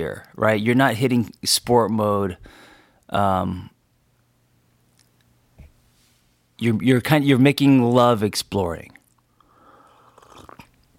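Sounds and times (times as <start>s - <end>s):
speech: 0.0s - 3.8s, 6.6s - 9.0s
person sipping pour-over coffee: 9.0s - 10.9s
person swallowing: 10.2s - 10.9s.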